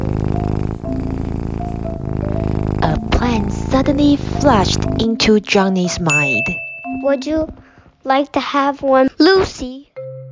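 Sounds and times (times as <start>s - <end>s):
cat purring in a person's lap: 0.0s - 6.1s
speech: 4.0s - 9.9s.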